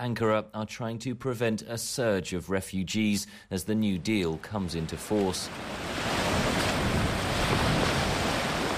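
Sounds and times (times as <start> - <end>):
speech: 0.0 - 6.1
gusting wind along a shoreline: 3.8 - 8.7
surf rushing along a shoreline: 4.0 - 8.7.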